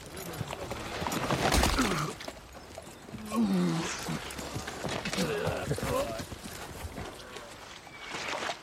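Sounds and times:
clattering hooves of a falling horse: 0.0 - 8.5.

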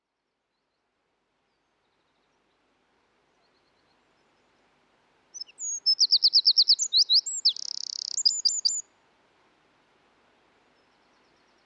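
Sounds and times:
Eurasian wren Troglodytes troglodytes singing: 5.4 - 8.8.

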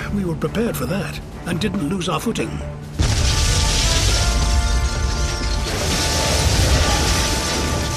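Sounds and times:
speech: 0.1 - 2.9
cannon explosion from overloaded focus chamber across a wheelhouse: 3.0 - 7.9.

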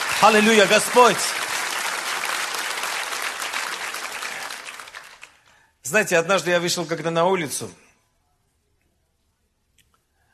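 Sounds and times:
audience applauding: 0.0 - 5.6
speech: 0.2 - 1.4, 5.9 - 7.8.

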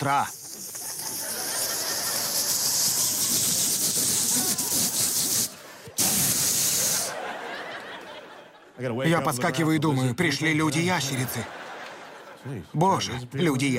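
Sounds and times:
speech: 0.0 - 0.5, 8.8 - 11.6, 12.4 - 13.7
voice imitating a lawn sprinkler in California: 0.0 - 7.2
laughter: 0.5 - 3.6, 4.2 - 9.6, 10.8 - 13.2.

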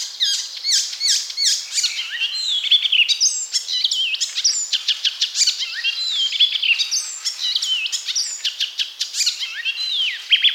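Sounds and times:
Icterine warbler song: 0.0 - 10.5.

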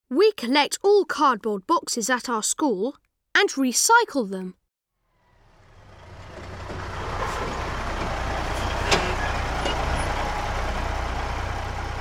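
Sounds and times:
speech: 0.1 - 4.6
large lorry engine rumbling: 5.1 - 11.9.

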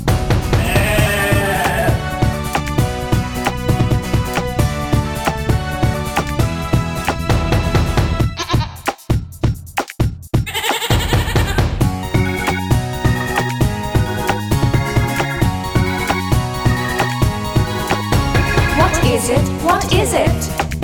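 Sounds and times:
busy rhythmic musical backing: 0.0 - 20.8
goat bleating: 0.6 - 2.0, 8.3 - 8.9, 10.5 - 11.6, 18.1 - 19.2.

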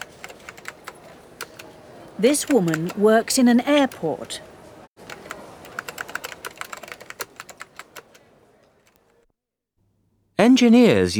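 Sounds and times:
children typing on a computer keyboard at school: 0.0 - 1.7, 2.3 - 4.4, 5.0 - 9.2
speech: 2.2 - 4.5, 10.5 - 11.1.

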